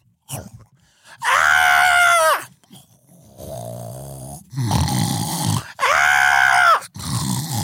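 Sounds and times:
rasping groan- or snore-like sounds: 0.2s - 7.6s
voice imitating screaming: 1.2s - 2.5s, 5.5s - 7.6s.

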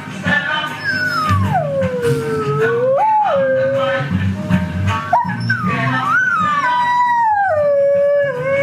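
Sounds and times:
steady rhythmic reggae music: 0.0s - 8.6s
dogs howling along to reggae music: 0.8s - 4.0s, 5.1s - 8.6s.

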